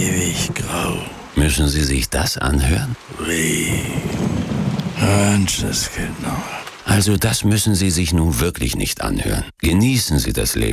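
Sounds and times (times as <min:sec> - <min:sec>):
voice-like tone: 0:00.0 - 0:01.6, 0:05.0 - 0:07.1
steady rain: 0:00.0 - 0:09.5
speech: 0:00.0 - 0:10.7.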